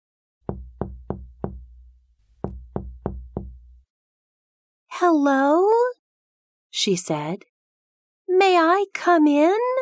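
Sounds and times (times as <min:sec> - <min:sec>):
knocking on the wooden door of a little house in a forest: 0:00.4 - 0:03.8
speech: 0:05.0 - 0:05.9, 0:06.8 - 0:07.5, 0:08.4 - 0:09.8.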